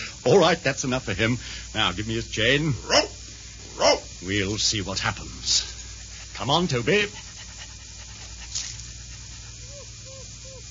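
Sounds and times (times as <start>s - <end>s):
speech: 0.2s - 3.2s, 3.8s - 5.7s, 6.4s - 7.3s
dog panting and sniffing: 5.6s - 10.2s
dog whining faintly: 9.5s - 10.7s.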